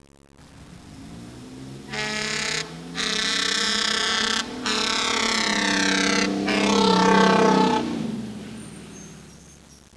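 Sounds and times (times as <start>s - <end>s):
fire disaster horn: 1.7s - 9.2s.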